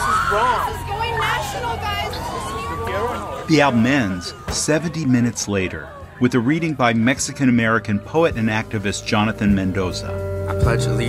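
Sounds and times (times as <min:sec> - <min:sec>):
overlapping raised voices and shouts of immigration enforcement officers in street commotion: 0:00.0 - 0:08.0
steady low rumble of traffic: 0:00.0 - 0:11.0
street crowd noise: 0:00.0 - 0:11.0
speech: 0:00.3 - 0:11.0.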